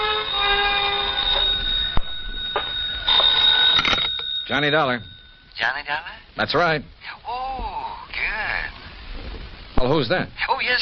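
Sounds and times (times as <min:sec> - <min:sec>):
old telephone bell ringing in an apartment: 0:00.0 - 0:05.5
speech: 0:04.5 - 0:07.3, 0:09.8 - 0:10.8.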